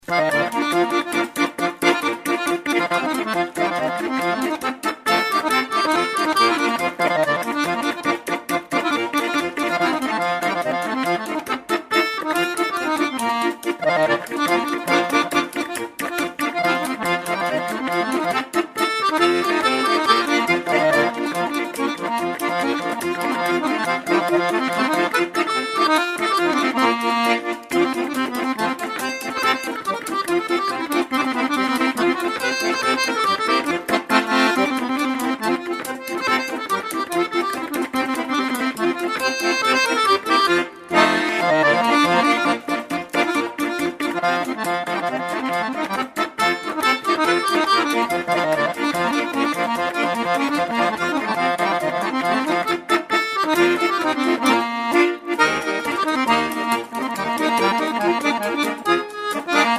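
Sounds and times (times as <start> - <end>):
clarinet polka music: 0.0 - 59.7.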